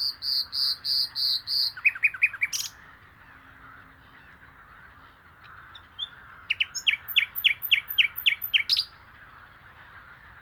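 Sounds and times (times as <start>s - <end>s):
common nightingale Luscinia megarhynchos singing: 0.0s - 2.8s, 6.0s - 8.9s.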